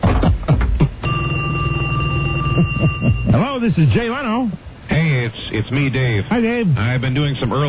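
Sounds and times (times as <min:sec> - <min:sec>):
telephone ringing: 0:01.0 - 0:03.6
speech: 0:02.6 - 0:07.6.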